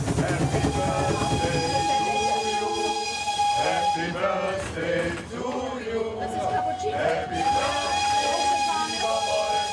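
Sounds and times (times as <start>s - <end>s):
narrow-gauge train running: 0.0s - 9.7s
cheerful group chatting aboard a wagon: 0.4s - 2.8s, 6.1s - 9.7s.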